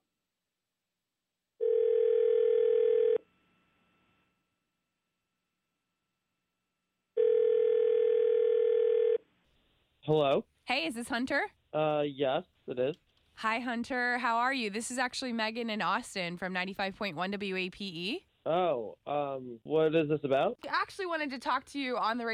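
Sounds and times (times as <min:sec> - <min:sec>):
steady telephone dial tone: 0:01.6 - 0:03.2, 0:07.2 - 0:09.2
speech: 0:10.1 - 0:22.3.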